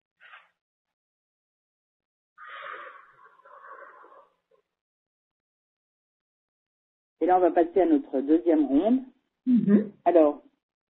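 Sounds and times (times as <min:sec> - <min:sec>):
person taking a slow deep breath: 0:02.4 - 0:04.2
speech: 0:07.2 - 0:10.5.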